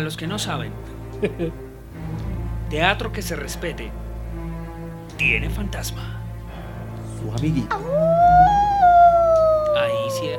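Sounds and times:
speech: 0.0 - 4.0, 5.2 - 6.2, 7.2 - 8.2, 9.8 - 10.3
laughter: 1.2 - 1.6
long drawn-out howl: 7.7 - 10.3.

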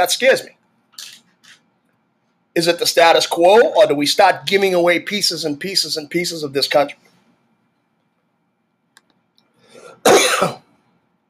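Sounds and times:
speech: 0.0 - 0.6, 2.6 - 7.1, 10.0 - 10.6
single harsh cough: 9.7 - 10.7.

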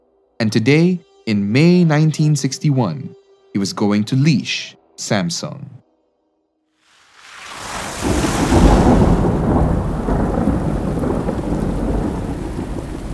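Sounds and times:
speech: 0.5 - 5.8
heavy downpour of summer rain at night in Korea: 6.9 - 13.1
deep roll of thunder: 7.6 - 13.1.

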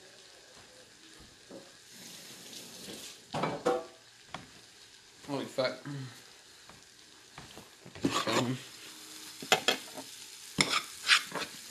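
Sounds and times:
onions frying slowly and caramelizing in a pan: 0.0 - 11.6
speech: 5.3 - 6.2, 8.4 - 8.7
stirring and scraping onions in a pan: 7.9 - 8.6, 9.4 - 11.6.

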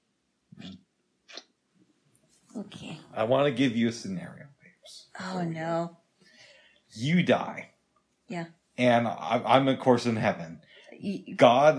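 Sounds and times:
soft wet kissing smacks: 0.6 - 1.6
speech: 2.6 - 6.0, 6.9 - 7.7, 8.3 - 11.7.

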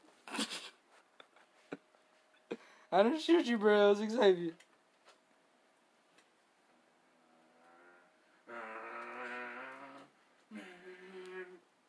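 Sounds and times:
speech: 2.9 - 4.6
voice imitating car engine revving: 8.4 - 11.7.

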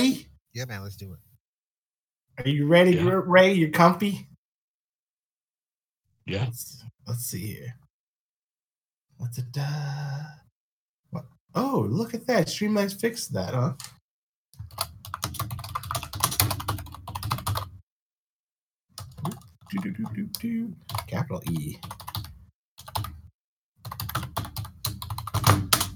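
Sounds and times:
speech: 0.0 - 1.3, 2.4 - 4.3, 6.3 - 7.8, 9.2 - 10.4, 11.1 - 14.0, 19.7 - 22.0
typing on a computer keyboard: 14.6 - 17.7, 19.0 - 20.1, 20.8 - 23.2, 23.8 - 25.9.

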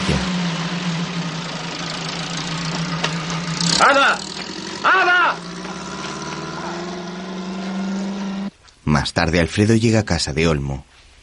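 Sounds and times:
car engine rumbling as the car pulls away: 0.0 - 8.6
speech: 3.8 - 5.4, 8.9 - 10.9.

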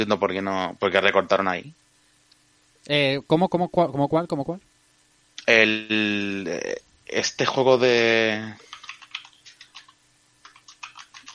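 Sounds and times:
speech: 0.0 - 1.9, 2.8 - 4.7, 5.5 - 8.7
typing on a computer keyboard: 8.6 - 11.3.

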